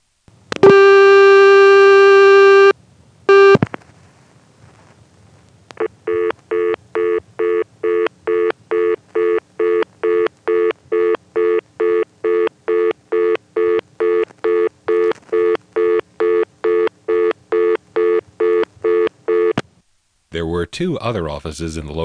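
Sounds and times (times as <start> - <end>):
steady telephone tone: 0.6 - 3.6, 5.8 - 19.6
speech: 20.8 - 22.0.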